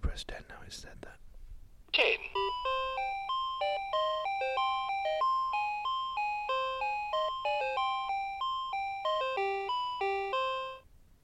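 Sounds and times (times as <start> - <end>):
speech: 0.2 - 1.3, 1.9 - 3.2
electronic toy playing a beeping melody: 2.3 - 10.9.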